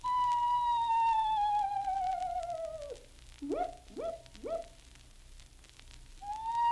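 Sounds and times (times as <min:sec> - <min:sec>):
wild owl giving a descending quavering whistle in the Florida wilderness: 0:00.1 - 0:04.7
wild owl giving short rising hoots in the Florida wilderness: 0:00.1 - 0:04.8, 0:06.2 - 0:06.7.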